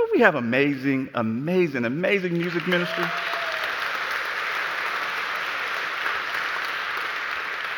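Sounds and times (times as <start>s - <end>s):
speech: 0.2s - 3.4s
congregation clapping and applauding: 2.3s - 7.7s.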